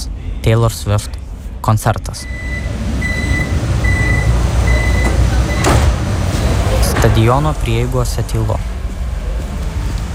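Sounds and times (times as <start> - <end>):
low rumble of riding down into the Vienna metro: 0.0 - 10.1
speech: 0.4 - 2.6, 7.0 - 8.7
short high beeping tones: 2.2 - 5.6.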